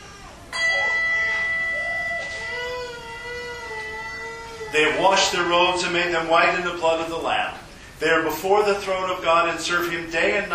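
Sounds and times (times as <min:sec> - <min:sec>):
church bell tolling: 0:00.5 - 0:02.7
speech: 0:04.7 - 0:10.5.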